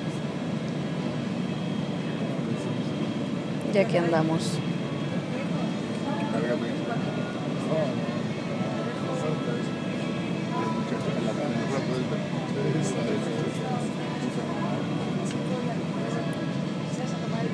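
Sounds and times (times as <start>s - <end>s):
airplane engines droning before takeoff: 0.0s - 17.5s
faint murmuring voices in an airplane cabin: 0.0s - 17.5s
speech: 3.7s - 4.7s.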